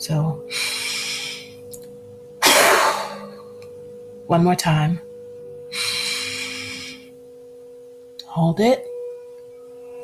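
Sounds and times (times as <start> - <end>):
speech: 0.0 - 0.6, 4.3 - 5.1, 8.4 - 8.9
faint steady hum: 0.0 - 10.0
fast hard exhale during a breathing exercise: 0.5 - 1.5, 2.4 - 3.4, 5.7 - 7.1
soft airy breath: 0.5 - 1.6, 5.7 - 7.1.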